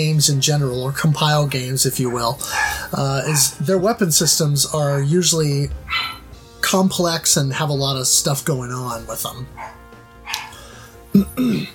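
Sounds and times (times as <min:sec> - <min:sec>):
speech: 0:00.0 - 0:09.8, 0:11.3 - 0:11.7
chihuahuas barking excitedly: 0:01.9 - 0:04.6, 0:05.8 - 0:06.4, 0:09.4 - 0:10.7.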